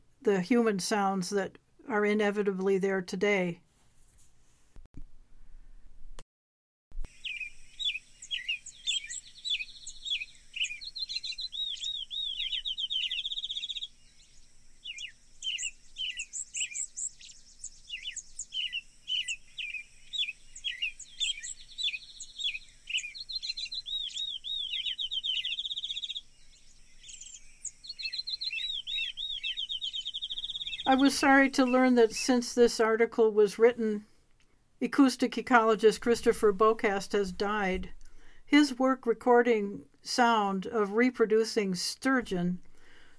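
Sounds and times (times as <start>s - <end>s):
speech: 0.2s - 3.6s, 31.2s - 34.1s, 34.8s - 43.1s
reconstructed soundscape of birds at a 1930s-40s shack: 7.1s - 32.8s.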